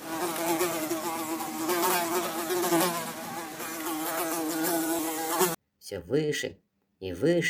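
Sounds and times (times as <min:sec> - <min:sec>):
fly buzzing as it flies away from a spider: 0:00.0 - 0:05.6
speech: 0:05.9 - 0:07.4.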